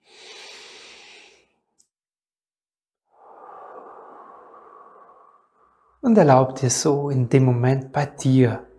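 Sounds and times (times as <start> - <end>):
person breathing in and out deliberately during a guided relaxation: 0.0 - 1.8, 3.1 - 6.0
speech: 6.0 - 8.7.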